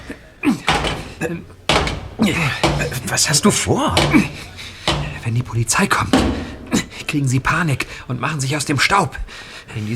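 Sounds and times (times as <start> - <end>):
car jack banging against wheel arch: 0.6 - 5.4, 6.1 - 7.1
speech: 1.2 - 1.6, 2.2 - 4.6, 5.3 - 6.5, 7.1 - 9.9.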